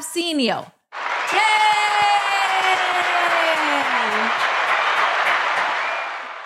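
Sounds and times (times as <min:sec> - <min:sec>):
studio audience applauding as a guest is welcomed onto a TV show: 0:00.9 - 0:06.4
person whooping in cheering: 0:01.3 - 0:04.4.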